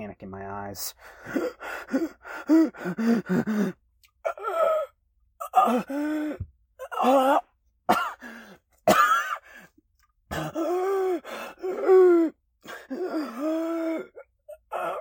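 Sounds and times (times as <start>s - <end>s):
speech: 0.1s - 3.8s, 5.6s - 7.5s
short gasping breaths: 1.0s - 4.9s, 5.7s - 6.5s, 8.1s - 8.7s, 9.4s - 14.9s
person coughing hoarsely: 6.8s - 8.2s, 8.8s - 9.5s, 10.3s - 10.8s.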